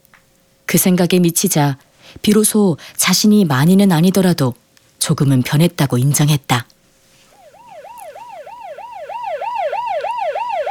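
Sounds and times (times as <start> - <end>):
speech: 0.7 - 6.8
siren yelping in rising-and-falling sweeps: 7.3 - 10.7.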